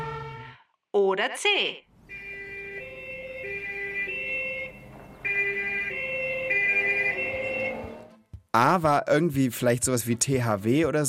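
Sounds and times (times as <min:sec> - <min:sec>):
speech: 0:01.0 - 0:01.9, 0:08.5 - 0:11.0
two-tone police siren wailing: 0:02.1 - 0:08.2.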